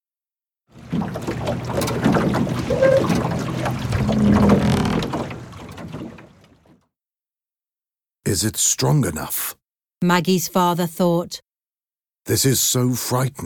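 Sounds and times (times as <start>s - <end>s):
water splashing and rushing around a rowboat: 0.7s - 6.8s
wooden rowboat creaking while rowed through water: 0.8s - 6.8s
speech: 8.3s - 11.4s, 12.2s - 13.4s.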